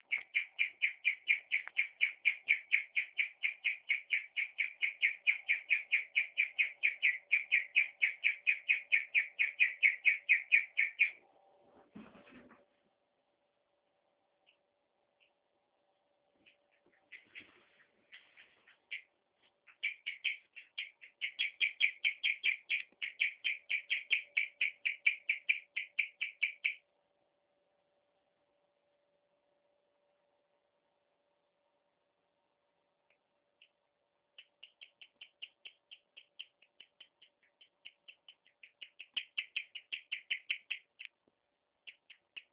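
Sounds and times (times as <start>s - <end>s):
guinea pig long chirp: 0.0s - 11.2s, 16.4s - 26.8s, 33.6s - 41.2s, 41.8s - 42.5s.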